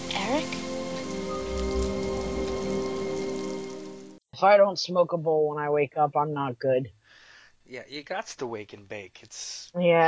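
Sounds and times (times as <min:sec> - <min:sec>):
steady rain pattering on a hard surface: 0:00.0 - 0:04.2
speech: 0:04.4 - 0:07.0, 0:07.7 - 0:10.0.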